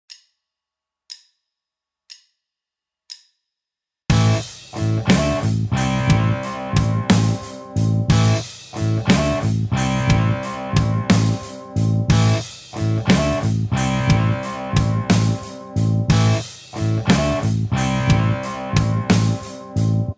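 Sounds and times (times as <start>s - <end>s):
rock backing track: 4.1s - 20.1s.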